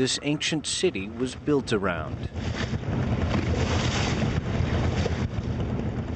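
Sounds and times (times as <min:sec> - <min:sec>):
speech: 0:00.0 - 0:03.2
rushing wind noise against the microphone: 0:00.0 - 0:06.1
small motorboat engine puttering across open water: 0:00.0 - 0:06.1
faint sloshing of water: 0:02.3 - 0:05.6.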